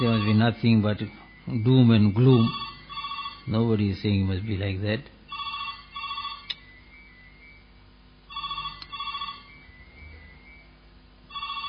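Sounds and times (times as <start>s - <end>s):
telephone ringing in electronic bursts: 0.0s - 3.8s, 5.3s - 7.6s, 8.3s - 10.7s, 11.3s - 11.6s
speech: 0.1s - 2.7s, 3.4s - 5.2s.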